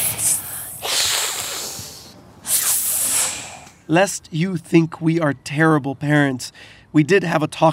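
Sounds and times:
human voice imitating a snake's hiss: 0.0 - 3.8
speech: 3.9 - 7.7.

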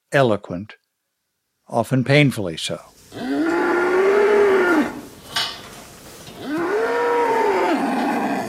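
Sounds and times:
speech: 0.1 - 0.8, 1.7 - 3.3
cow mooing: 3.2 - 5.1, 6.4 - 8.4.

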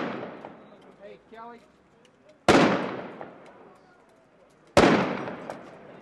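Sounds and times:
police gunshots fired at a roadside bomb: 0.0 - 0.7, 2.5 - 3.4, 4.8 - 5.8
faint murmuring voices: 0.4 - 5.9.

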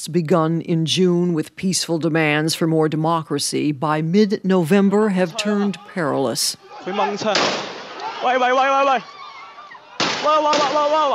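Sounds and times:
speech: 0.0 - 9.2, 10.2 - 11.1
people shouting at a street protest: 4.9 - 11.1
police gunshots at a street protest: 7.2 - 8.0, 10.0 - 11.0.

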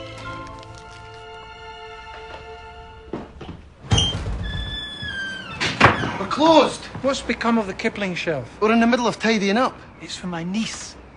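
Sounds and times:
steady tonal music: 0.0 - 3.4
bookstore front door opening thump: 3.2 - 6.3
speech: 6.4 - 11.0.

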